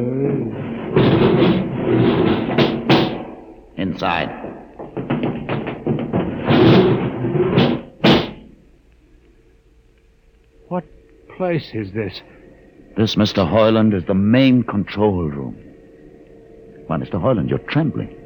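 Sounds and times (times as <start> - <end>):
heavy door grinding open: 0.3 - 8.5
scraping and knocking: 0.3 - 8.5
heavy door shutting with a solid thud: 0.6 - 3.5, 4.2 - 8.5
speech: 4.0 - 4.5, 10.7 - 12.4, 13.0 - 15.7, 16.9 - 18.2.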